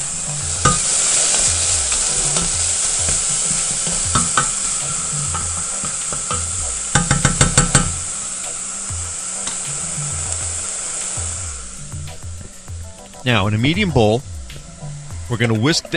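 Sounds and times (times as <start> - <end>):
leeks sizzling as they sauté in bacon drippings in a pan: 0.0 - 15.9
sharp utensil taps on the pan: 0.5 - 8.2
speech: 13.3 - 14.3, 15.3 - 15.9.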